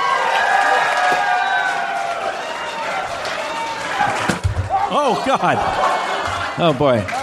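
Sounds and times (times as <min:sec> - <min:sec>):
rising whoops: 0:00.0 - 0:04.9
dense live audience cheering and shouting: 0:00.0 - 0:07.2
speech: 0:04.9 - 0:05.9, 0:06.6 - 0:07.2.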